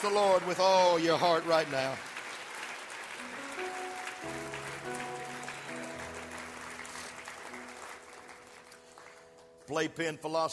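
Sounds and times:
speech: 0:00.0 - 0:02.1, 0:09.7 - 0:10.5
audience clapping: 0:00.0 - 0:10.5
sustained organ-like chords: 0:03.2 - 0:09.7.

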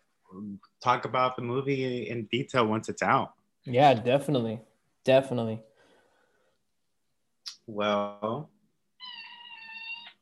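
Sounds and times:
speech: 0:00.3 - 0:05.7, 0:07.7 - 0:08.5
kitten meowing: 0:09.0 - 0:10.2.

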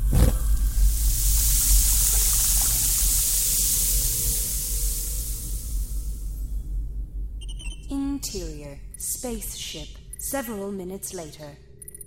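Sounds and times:
eggs frying in a pan: 0:00.1 - 0:06.6
speech: 0:08.2 - 0:11.7.

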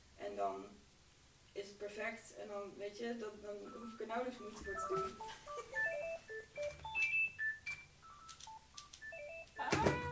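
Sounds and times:
speech: 0:00.4 - 0:00.8, 0:01.6 - 0:06.8
telephone electronic melodic ringtone: 0:03.6 - 0:10.1.

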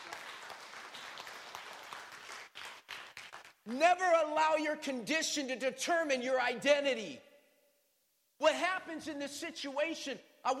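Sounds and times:
audience applauding: 0:00.0 - 0:03.6
speech: 0:03.7 - 0:07.3, 0:08.4 - 0:10.5.

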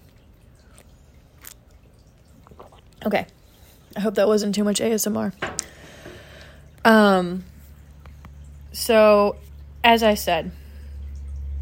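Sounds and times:
low rumble: 0:00.0 - 0:11.5
person sipping hot tea: 0:02.4 - 0:02.9
speech: 0:03.0 - 0:05.5, 0:06.8 - 0:07.5, 0:08.8 - 0:10.6.

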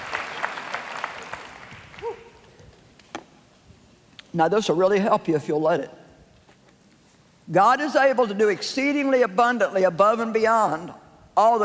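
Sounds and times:
audience clapping: 0:00.0 - 0:02.0
speech: 0:04.4 - 0:06.0, 0:07.5 - 0:11.6.

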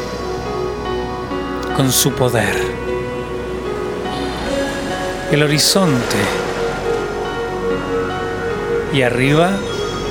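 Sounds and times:
faint tonal hum: 0:00.0 - 0:10.1
speech: 0:01.8 - 0:03.0, 0:05.3 - 0:06.4, 0:08.9 - 0:09.7
ocean waves breaking on a beach: 0:03.9 - 0:08.8.

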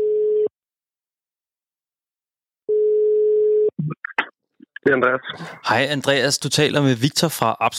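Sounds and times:
electronic ringback tone of an outgoing phone call: 0:02.7 - 0:03.7
speech: 0:04.9 - 0:07.7.

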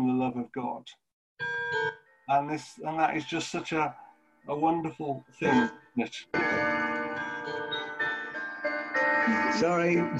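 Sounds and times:
speech: 0:00.3 - 0:07.6, 0:09.5 - 0:10.1
clock chiming a melody of bell-like tones: 0:01.4 - 0:03.9, 0:04.5 - 0:10.1.

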